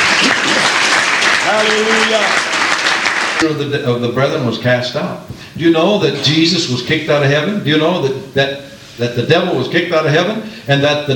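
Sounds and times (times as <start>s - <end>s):
congregation clapping hands at a church service: 0.0s - 3.6s
speech: 1.5s - 2.5s, 3.4s - 11.1s.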